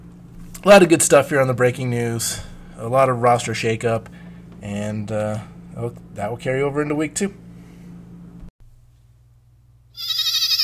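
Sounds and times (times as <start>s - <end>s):
low steady hum: 0.0s - 10.0s
speech: 0.6s - 7.4s
goat bleating: 10.0s - 10.6s.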